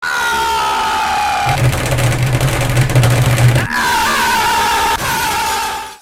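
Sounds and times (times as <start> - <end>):
person screaming: 0.0 - 1.6, 3.6 - 6.0
keyboard pounding: 1.5 - 4.4.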